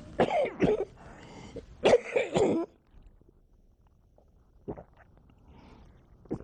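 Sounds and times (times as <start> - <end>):
person coughing: 0.2 - 0.9, 1.8 - 2.8.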